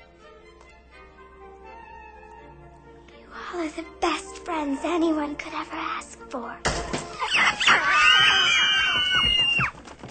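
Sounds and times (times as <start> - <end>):
speech: 3.5 - 8.4
small monkey screeching: 7.2 - 9.7.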